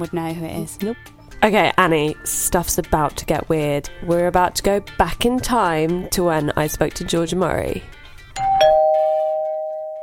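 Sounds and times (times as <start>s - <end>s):
speech: 0.0s - 8.0s
two-note doorbell ding-dong chime: 8.4s - 10.0s.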